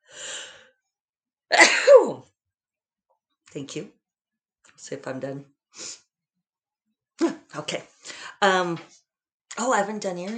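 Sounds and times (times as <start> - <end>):
person sneezing from a cold wind: 1.5 - 2.1
speech: 1.5 - 2.2, 3.6 - 4.0, 4.8 - 6.0, 7.6 - 9.0, 9.6 - 10.3.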